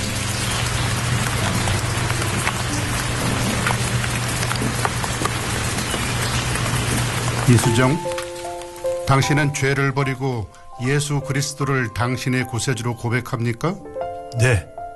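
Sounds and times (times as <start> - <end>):
steady rain on a hard surface at a small chapel in Tokyo: 0.0 - 10.0
speech: 7.5 - 8.1, 9.1 - 14.8.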